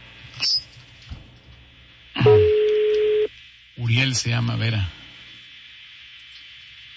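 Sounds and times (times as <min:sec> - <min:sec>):
short high telephone beep during redial: 0:02.2 - 0:03.3
steady low telephone tone of an unanswered call: 0:02.2 - 0:03.3
speech: 0:04.1 - 0:05.0.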